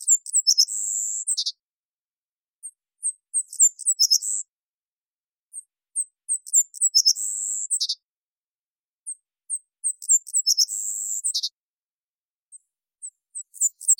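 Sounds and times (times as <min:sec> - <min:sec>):
Savannah sparrow Passerculus sandwichensis song in Washington: 0:00.0 - 0:01.7, 0:02.6 - 0:04.6, 0:05.4 - 0:08.1, 0:09.0 - 0:11.6, 0:12.4 - 0:13.9.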